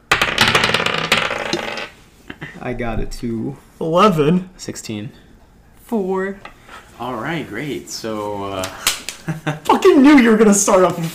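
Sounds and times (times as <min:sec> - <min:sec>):
several dice clattering on a hard tabletop: 0:00.1 - 0:01.9
speech: 0:01.6 - 0:01.8, 0:02.6 - 0:05.2, 0:05.9 - 0:11.1
laughter: 0:09.2 - 0:10.0.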